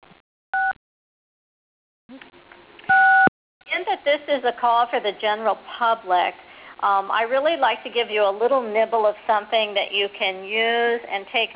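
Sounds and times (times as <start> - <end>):
phone keypad tones as callers press 6: 2.9 - 3.3
speech: 4.0 - 11.5.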